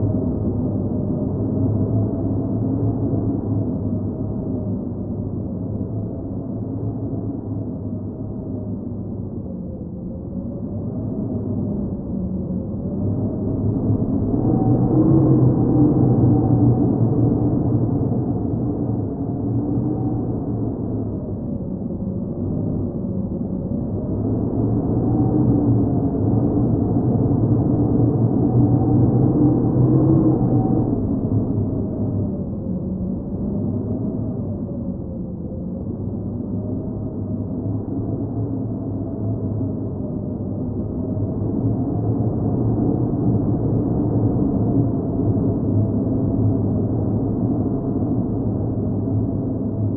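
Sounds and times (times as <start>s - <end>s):
wind in an underground space: 0.0s - 49.9s.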